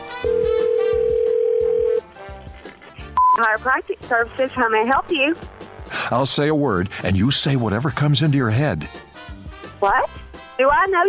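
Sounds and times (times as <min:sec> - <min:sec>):
telephone ring tone: 0:00.2 - 0:02.0
faint rhythmic music bed: 0:00.3 - 0:11.0
speech: 0:03.4 - 0:09.0, 0:09.8 - 0:11.0.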